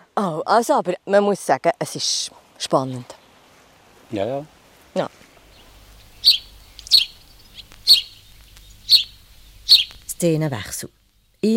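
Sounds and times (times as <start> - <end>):
speech: 0.2 - 3.2, 4.1 - 5.3, 10.2 - 11.5
house sparrow chirping: 5.4 - 11.5.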